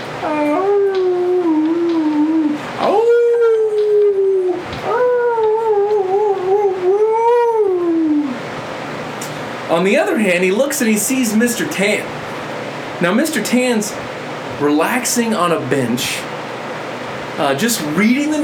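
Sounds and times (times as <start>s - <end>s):
dog on a front porch howling mournfully: 0.2s - 8.5s
speech: 9.8s - 12.3s, 13.0s - 16.4s, 17.4s - 18.4s.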